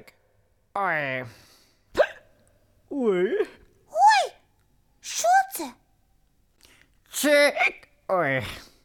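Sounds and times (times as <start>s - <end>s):
speech: 0.8s - 1.5s, 3.0s - 3.6s, 7.2s - 8.6s
person acting exaggerated hiccups: 2.0s - 2.3s.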